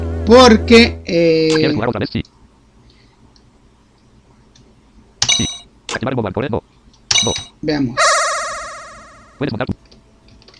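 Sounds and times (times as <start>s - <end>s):
speech: 0.3s - 2.4s, 6.0s - 8.1s, 9.4s - 9.9s
warbling electronic game beep tone: 8.0s - 9.5s.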